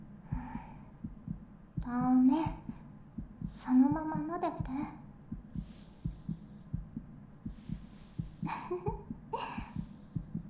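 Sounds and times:
heartbeat thumping in lub-dub pairs: 0:00.3 - 0:10.4
speech: 0:01.8 - 0:02.6, 0:03.6 - 0:05.0, 0:08.5 - 0:09.5
soft rustling: 0:05.5 - 0:10.4.

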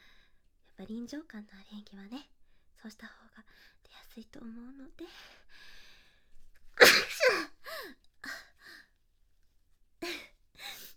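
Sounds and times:
speech: 0:00.8 - 0:05.7
loud sneeze: 0:06.8 - 0:07.5.

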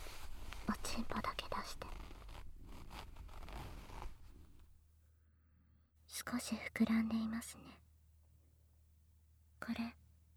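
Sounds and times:
speech: 0:01.0 - 0:01.8, 0:06.3 - 0:07.9, 0:09.6 - 0:10.0
trouser zipper being opened: 0:01.8 - 0:04.6.

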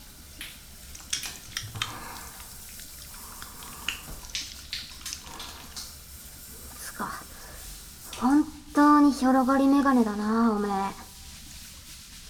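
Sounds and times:
water splashing and trickling while washing a back with shampoo: 0:00.0 - 0:08.4
running water hiss: 0:00.0 - 0:12.2
speech: 0:09.2 - 0:11.0.

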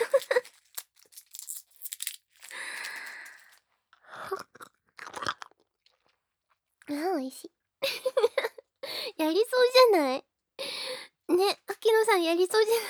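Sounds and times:
person crunching a hard candy: 0:00.0 - 0:03.6, 0:04.2 - 0:06.1
wrapper crinkling: 0:00.0 - 0:03.6
speech: 0:06.9 - 0:07.6, 0:09.2 - 0:10.3, 0:11.3 - 0:12.8.

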